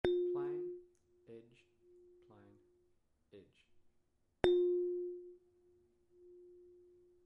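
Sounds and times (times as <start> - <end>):
bell plate struck on its edge: 0.0 - 0.8, 4.4 - 5.3.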